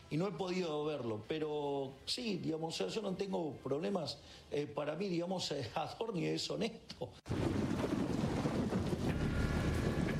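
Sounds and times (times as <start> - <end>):
speech: 0.1 - 7.4
heavy rain downpour with deep rumbling undertone: 7.3 - 10.1.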